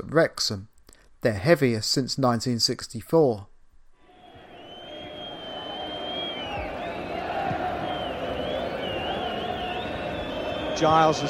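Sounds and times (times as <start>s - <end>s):
speech: 0.0s - 3.5s, 10.8s - 11.2s
large football stadium crowd roaring and cheering: 4.0s - 11.2s
shrill whistles: 4.0s - 11.2s.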